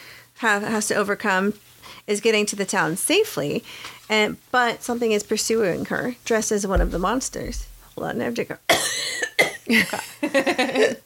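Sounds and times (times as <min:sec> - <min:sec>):
speech: 0:00.4 - 0:11.0
person coughing: 0:08.7 - 0:09.8.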